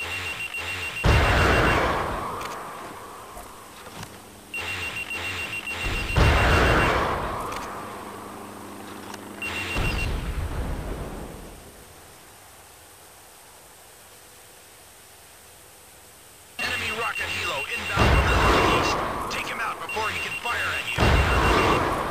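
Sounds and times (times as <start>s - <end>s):
high steady electronic missile lock-on tone in a video game: 0.0s - 8.0s, 9.0s - 10.3s, 16.6s - 22.0s.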